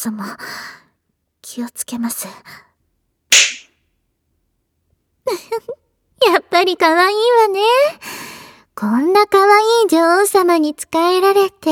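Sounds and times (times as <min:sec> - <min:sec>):
speech: 0:00.0 - 0:00.8, 0:01.4 - 0:02.7, 0:05.3 - 0:11.7
single sharp loud whip crack: 0:03.3 - 0:03.7.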